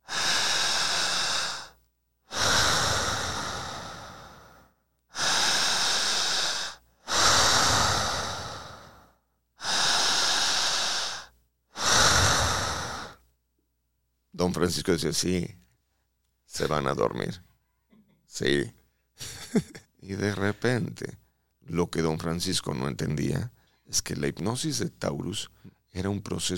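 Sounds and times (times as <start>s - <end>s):
breathing in and out through an open mouth during a hypnosis relaxation exercise: 0.0s - 13.3s
speech: 14.5s - 15.6s, 16.6s - 17.5s, 18.4s - 26.5s
laughter: 19.2s - 19.8s.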